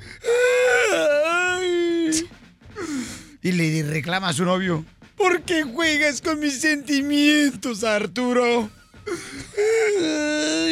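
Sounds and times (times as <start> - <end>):
voice imitating a girlfriend crying with wails and sobs: 0.2 - 2.4, 9.0 - 10.6
speech: 3.4 - 10.6.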